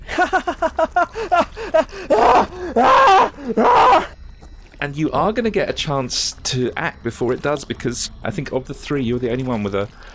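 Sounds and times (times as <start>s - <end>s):
person laughing in rhythmic bursts: 0.0s - 3.7s
person screaming in horror: 2.1s - 4.1s
speech: 4.9s - 10.1s.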